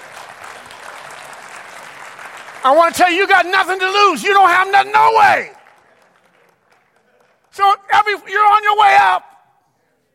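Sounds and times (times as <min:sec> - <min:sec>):
audience applause during a sermon: 0:00.0 - 0:09.0
speech: 0:02.6 - 0:05.6, 0:07.6 - 0:09.3.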